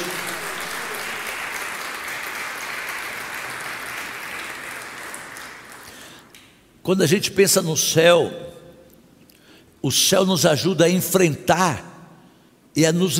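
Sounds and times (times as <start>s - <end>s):
crowd applauding: 0.0s - 6.3s
speech: 6.9s - 8.6s, 9.8s - 11.9s, 12.8s - 13.1s.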